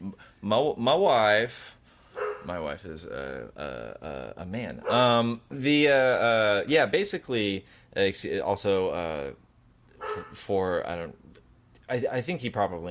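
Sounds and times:
speech: 0.2 - 1.8, 2.4 - 9.4, 10.2 - 11.3, 11.9 - 12.8
dog barking and yipping: 2.2 - 2.5, 4.8 - 5.2, 10.0 - 10.4.

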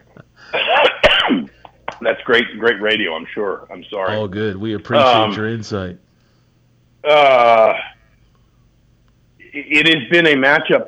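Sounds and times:
person coughing harshly after swallowing wrong: 0.1 - 1.8
speech: 2.0 - 6.0, 7.0 - 7.9, 9.6 - 10.8.

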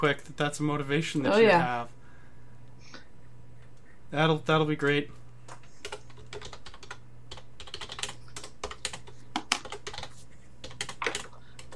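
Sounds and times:
speech: 0.0 - 2.0, 4.1 - 5.2
low steady hum: 0.0 - 11.7
rapid typing on a computer keyboard: 5.5 - 11.7.

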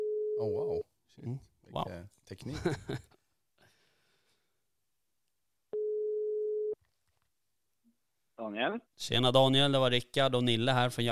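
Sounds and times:
speech: 0.4 - 3.2, 8.5 - 11.0
laughter: 2.5 - 3.1
ringback tone on an outgoing phone call: 5.8 - 6.8.

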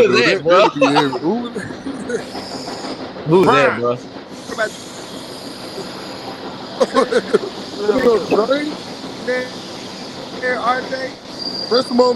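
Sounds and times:
laughter: 0.0 - 2.3, 6.7 - 8.8
speech: 0.0 - 5.0, 6.8 - 9.6, 10.4 - 12.1
train rumbling along rail tracks: 0.0 - 12.1.

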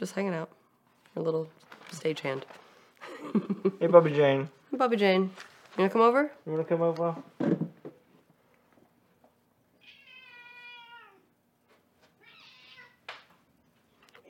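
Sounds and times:
speech: 0.0 - 0.6, 1.2 - 2.6, 3.2 - 7.6
cat meowing: 9.8 - 11.3, 12.2 - 13.0.

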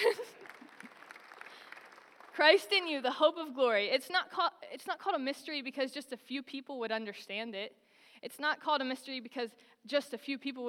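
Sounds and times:
audience clapping: 0.0 - 2.7
speech: 2.4 - 10.6.

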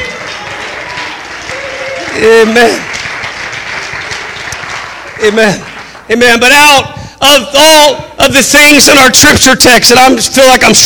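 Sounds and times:
congregation clapping hands: 0.0 - 6.9
speech: 2.2 - 3.0, 5.2 - 10.8.

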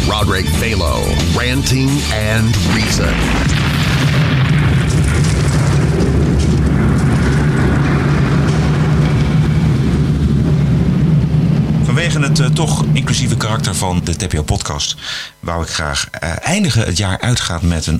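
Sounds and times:
speech: 0.2 - 4.3, 12.0 - 17.9
dense barrage of fireworks explosions with deep booms and sharp bangs: 2.0 - 15.2.

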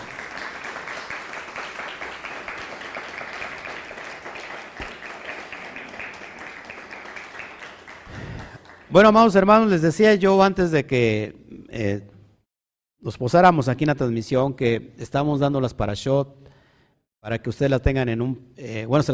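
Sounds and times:
crowd applauding: 0.0 - 9.4
speech: 8.9 - 12.1, 13.0 - 16.4, 17.2 - 19.1.

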